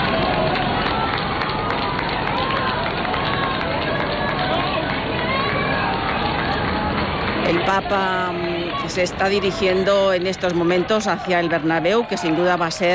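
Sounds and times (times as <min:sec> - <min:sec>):
street crowd hubbub of many voices and movement in Spain: 0:00.0 - 0:12.9
speech: 0:07.6 - 0:12.9.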